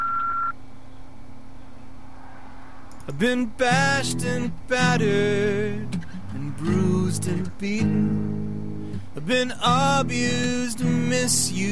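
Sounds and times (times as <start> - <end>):
electronic answering machine beep: 0.0 - 0.5
speech: 3.1 - 8.6, 9.2 - 11.7.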